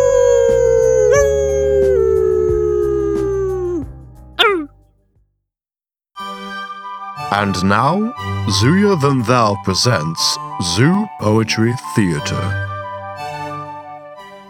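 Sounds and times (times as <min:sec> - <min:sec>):
dog yelping: 0:00.0 - 0:03.8, 0:04.4 - 0:04.7
dog howling: 0:00.0 - 0:04.7
speech: 0:07.4 - 0:12.7.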